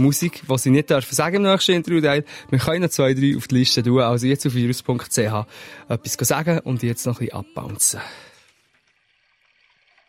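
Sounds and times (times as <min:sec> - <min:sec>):
speech: 0:00.0 - 0:08.3
water splashing and burbling: 0:08.1 - 0:10.0.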